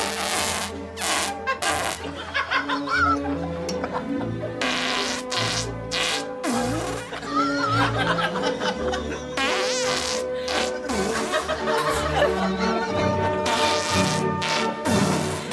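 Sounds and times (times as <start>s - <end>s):
fart-like blasts forming a melody: 0.0s - 2.1s, 4.6s - 7.2s, 9.4s - 12.1s, 13.4s - 15.5s
laughter: 1.4s - 5.1s, 6.5s - 14.4s.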